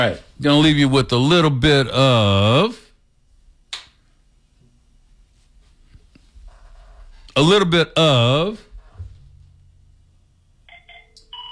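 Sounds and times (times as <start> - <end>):
speech: 0.0 - 2.8, 7.4 - 8.7
telephone ringing with electronic warbling tones: 10.7 - 11.4.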